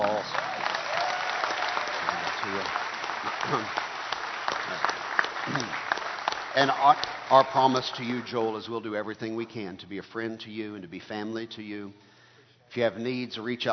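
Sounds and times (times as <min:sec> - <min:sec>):
large audience applauding in a church: 0:00.0 - 0:08.6
speech: 0:03.5 - 0:03.8, 0:06.6 - 0:12.1, 0:12.7 - 0:13.7.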